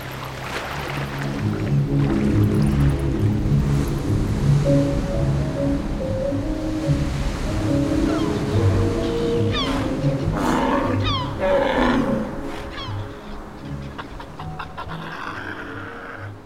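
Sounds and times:
water spray and churning waves from travelling over the sea: 0.0 - 16.4.

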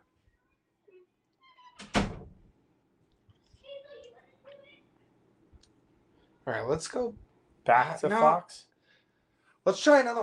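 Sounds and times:
door shutting with a loud thunk: 1.5 - 2.5
speech: 6.5 - 8.7, 9.6 - 10.2.

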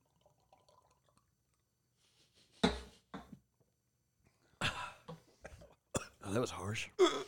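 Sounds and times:
person gulping a drink: 0.0 - 1.3
speech: 6.3 - 7.1.

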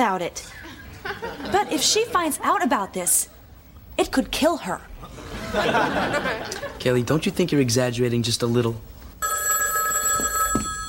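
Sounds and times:
speech: 0.0 - 3.4, 4.0 - 8.9
laughter: 0.6 - 2.2, 5.0 - 6.8
telephone ringing with an electronic trill: 9.2 - 10.8.

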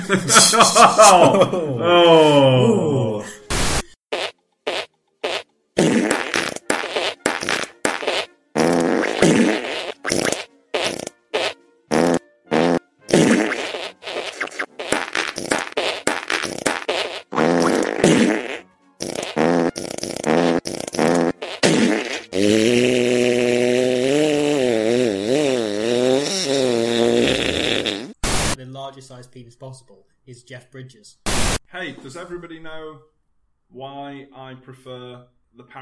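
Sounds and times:
laughter: 0.0 - 1.9
speech: 0.1 - 3.3, 29.6 - 31.2, 32.3 - 35.8
loud fart noises playing a TV theme tune: 3.5 - 28.6.

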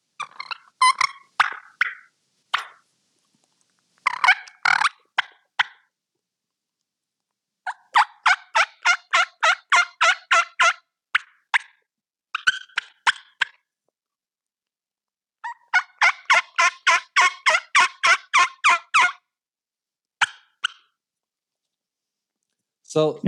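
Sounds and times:
turkey hen imitation putts and purrs on a double-reed call: 0.2 - 2.9, 4.0 - 5.9, 7.6 - 13.7, 15.4 - 19.3, 20.2 - 21.0
speech: 22.9 - 23.2.

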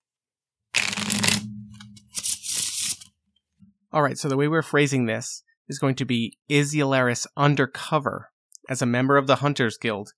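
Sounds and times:
playing card being flipped during a tabletop role-playing game: 0.8 - 3.1
speech: 3.9 - 10.1.

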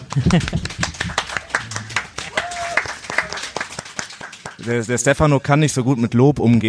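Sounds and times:
laughter: 0.0 - 2.6
audience applause: 0.0 - 5.0
speech: 0.2 - 1.3, 4.6 - 6.6
crowd whooping: 1.2 - 3.9.

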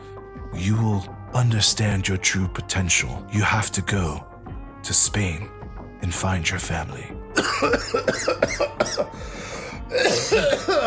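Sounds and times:
speech: 0.6 - 10.8
person coughing: 7.4 - 9.2, 9.8 - 10.8.

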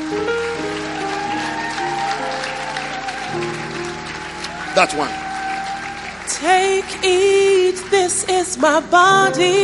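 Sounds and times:
crowd applauding people returning to their seats: 0.0 - 9.6
speech: 4.8 - 5.2, 6.4 - 9.6
sustained keyboard or organ chords: 9.1 - 9.6.

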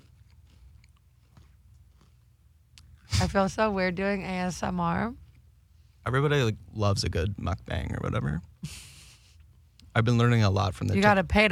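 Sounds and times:
crispy food crunching and snapping: 0.0 - 3.1
low steady hum: 0.0 - 11.5
speech: 3.2 - 5.2, 6.0 - 8.8, 10.0 - 11.5.

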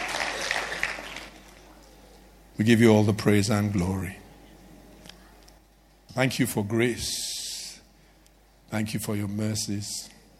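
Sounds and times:
crowd applauding as a clap for God: 0.0 - 1.9
speech: 2.6 - 4.2, 6.2 - 7.3, 8.7 - 10.2.

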